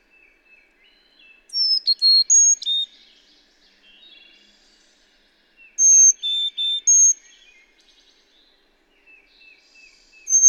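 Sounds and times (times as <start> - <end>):
bird song phrase of clear whistled notes: 1.0 - 2.9, 5.8 - 7.6, 10.2 - 10.4.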